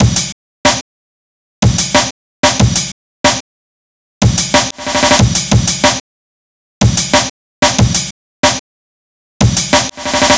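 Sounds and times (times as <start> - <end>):
drum break: 0.0 - 0.8, 1.6 - 3.4, 4.2 - 6.0, 6.8 - 8.6, 9.4 - 10.3.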